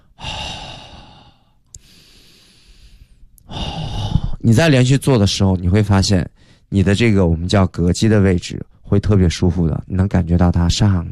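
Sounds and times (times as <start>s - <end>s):
deep breathing during a breathing exercise: 0.0s - 4.4s
speech: 4.4s - 11.1s.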